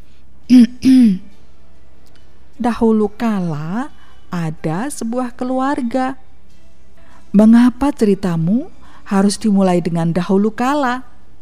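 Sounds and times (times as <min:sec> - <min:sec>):
person clearing throat: 0:00.5 - 0:01.3
speech: 0:02.6 - 0:06.2, 0:07.3 - 0:11.1.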